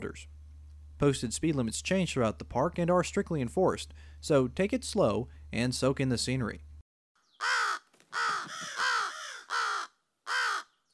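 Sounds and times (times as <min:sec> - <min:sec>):
speech: 0:00.0 - 0:00.4, 0:01.0 - 0:06.7
crow cawing: 0:07.4 - 0:10.8.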